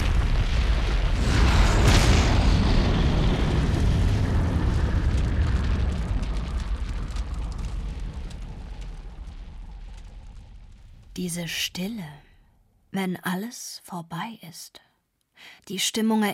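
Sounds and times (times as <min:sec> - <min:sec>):
deep sustained low-frequency roar: 0:00.0 - 0:11.1
massive gas station explosion: 0:00.0 - 0:11.2
speech: 0:11.2 - 0:12.2, 0:12.9 - 0:14.8, 0:15.4 - 0:16.3.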